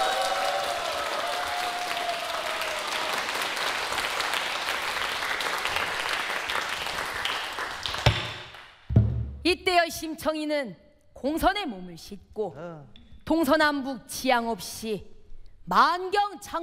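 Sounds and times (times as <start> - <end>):
audience applause for the drummer: 0.0 - 8.7
speech: 9.8 - 15.1, 15.7 - 16.6.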